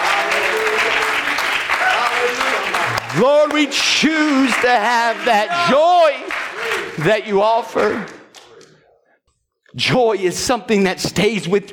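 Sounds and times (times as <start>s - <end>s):
crowd clapping hands in applause: 0.0s - 8.6s
speech: 3.1s - 6.4s, 7.0s - 8.2s, 9.8s - 11.7s.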